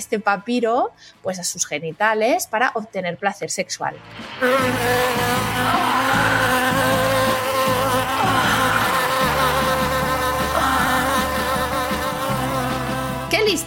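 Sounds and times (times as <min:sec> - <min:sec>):
speech: 0:00.0 - 0:07.0
dense steady drone of buzzing bees: 0:04.4 - 0:13.5
laughter: 0:05.0 - 0:12.2.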